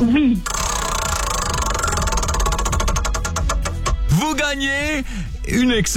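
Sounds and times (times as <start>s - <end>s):
prize wheel spun on a game show ticking: 0.5s - 4.2s
speech: 4.5s - 5.9s.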